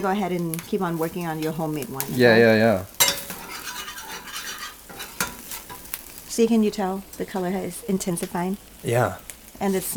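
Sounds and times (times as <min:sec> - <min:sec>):
speech: 0:00.0 - 0:03.0, 0:06.4 - 0:09.9
curry paste and coconut milk stirred and sizzling in a pan: 0:00.0 - 0:09.9
utensil clinking against pan: 0:03.0 - 0:05.9.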